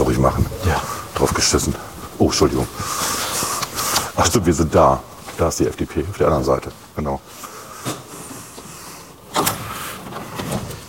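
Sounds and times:
speech: 0:00.2 - 0:03.3, 0:04.2 - 0:07.5
sealed door clicks and handling noises: 0:09.3 - 0:10.8.

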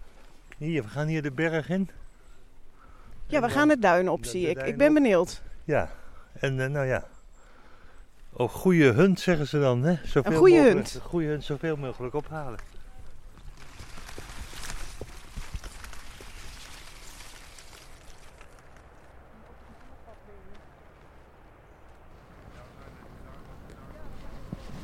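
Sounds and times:
speech: 0:00.6 - 0:02.1, 0:03.3 - 0:07.1, 0:08.4 - 0:12.7
people walking on sand on a beach: 0:08.0 - 0:24.8.

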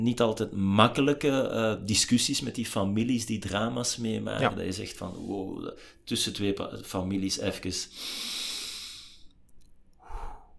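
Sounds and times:
speech: 0:00.0 - 0:08.4
deep breath in: 0:07.9 - 0:09.3, 0:10.0 - 0:10.5
soft exhale: 0:07.9 - 0:09.3, 0:10.0 - 0:10.5.

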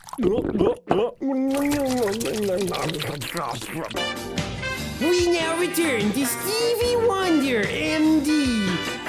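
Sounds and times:
person chewing a mouthful of water: 0:00.0 - 0:04.0
person humming and grunting: 0:00.1 - 0:03.0
speech: 0:00.2 - 0:01.3, 0:02.3 - 0:08.9.

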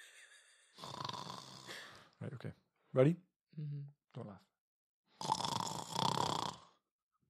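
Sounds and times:
person imitating a cartoon snore with a falling whistle: 0:00.8 - 0:01.8, 0:05.2 - 0:06.8
speech: 0:02.2 - 0:04.5.

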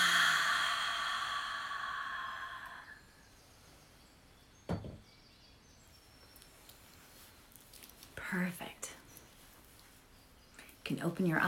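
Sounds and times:
deep breath in through the nose and out during guided meditation: 0:00.0 - 0:03.3
speech: 0:08.3 - 0:08.8, 0:10.9 - 0:11.4.

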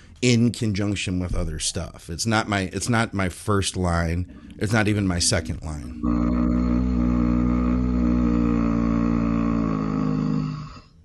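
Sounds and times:
speech: 0:00.2 - 0:06.4
low voiced groan of disapproval: 0:04.3 - 0:10.9.

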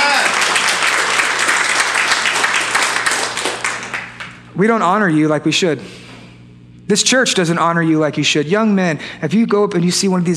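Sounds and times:
audience applause in a church: 0:00.0 - 0:04.4
speech: 0:04.6 - 0:06.0, 0:06.9 - 0:10.3.

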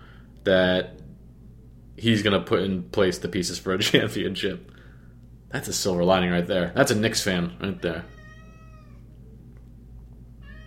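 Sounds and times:
steady low hum: 0:00.0 - 0:10.6
speech: 0:00.4 - 0:01.0, 0:02.0 - 0:04.8, 0:05.5 - 0:08.2
male cat meowing loudly outside: 0:08.1 - 0:09.0, 0:10.4 - 0:10.6.

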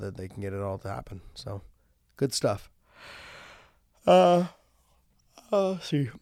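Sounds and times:
speech: 0:00.0 - 0:03.3, 0:04.0 - 0:04.6, 0:05.5 - 0:06.1
jet-lagged person yawning: 0:04.1 - 0:04.6.

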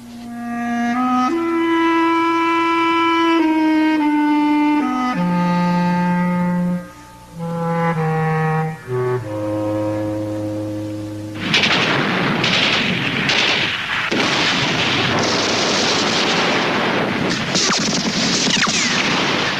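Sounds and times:
held low tone: 0:00.0 - 0:11.8
Soviet artillery bombardment of a city: 0:11.4 - 0:19.5.

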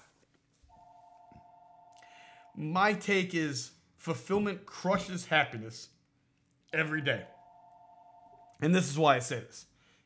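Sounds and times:
office telephone electronic two-tone ring: 0:00.7 - 0:02.6, 0:07.2 - 0:08.6
speech: 0:02.6 - 0:06.0, 0:06.7 - 0:07.4, 0:08.6 - 0:09.7.

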